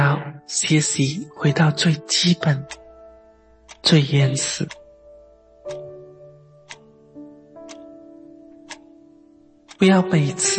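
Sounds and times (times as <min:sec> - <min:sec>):
speech: 0:00.2 - 0:02.8, 0:03.8 - 0:04.8, 0:09.8 - 0:10.5
clock second hand ticking: 0:00.6 - 0:02.9, 0:03.6 - 0:04.9, 0:05.7 - 0:06.0, 0:06.6 - 0:07.0, 0:07.6 - 0:10.5.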